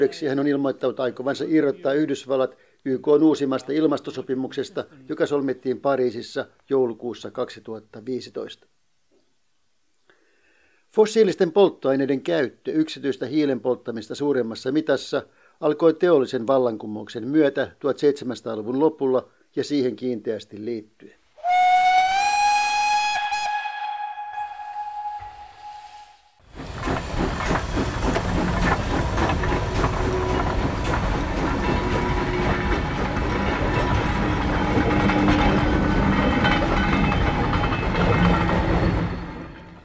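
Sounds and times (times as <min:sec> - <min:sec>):
speech: 0:00.0 - 0:08.7, 0:10.9 - 0:21.2
steam locomotive whistle long harmonic blast: 0:21.4 - 0:26.4
train rumbling and clattering along the rails: 0:24.7 - 0:39.8.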